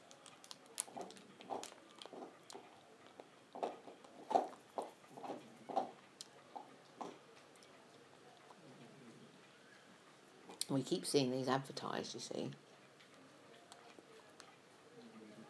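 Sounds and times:
munching and chewing on a snack with crunchy bites: 0:00.0 - 0:08.9
speech: 0:10.7 - 0:12.7.

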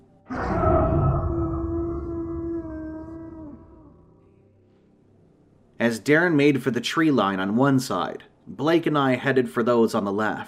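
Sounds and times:
echoing gargled creature howl: 0:00.3 - 0:04.2
speech: 0:05.8 - 0:10.4.

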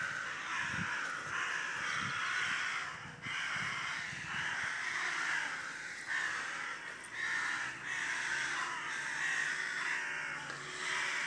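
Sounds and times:
large group of crows cawing: 0:00.0 - 0:11.2.

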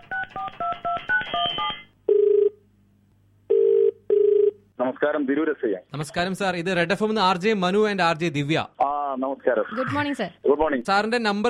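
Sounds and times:
phone keypad beeping tones while dialing: 0:00.0 - 0:02.2
phone buzzing ring tones as a call goes out to a police officer: 0:00.0 - 0:02.6, 0:03.5 - 0:04.6
speech: 0:05.0 - 0:08.8, 0:09.4 - 0:11.4.

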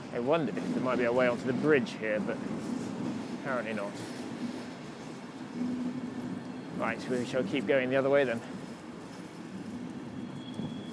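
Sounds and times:
thin high whine of a departing train: 0:00.0 - 0:10.9
train pulling out of a station: 0:00.0 - 0:10.9
speech: 0:00.2 - 0:02.8, 0:03.4 - 0:04.6, 0:06.8 - 0:08.5.

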